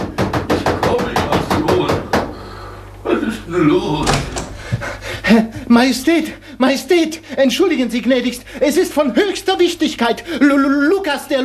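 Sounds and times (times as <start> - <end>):
frantic heavy pounding on the door of a small castle: 0.0 - 2.4, 4.0 - 5.0
speech: 5.3 - 11.4.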